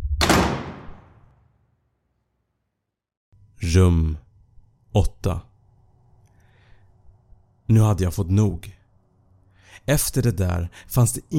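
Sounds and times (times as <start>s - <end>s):
door slamming shut with a heavy booming thud: 0.0s - 1.2s
speech: 3.6s - 4.2s, 5.0s - 5.5s, 7.7s - 8.8s, 9.8s - 11.3s.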